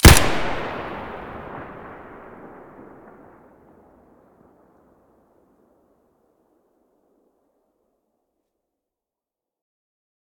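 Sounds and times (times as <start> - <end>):
SKS gunshot: 0.0 - 3.5.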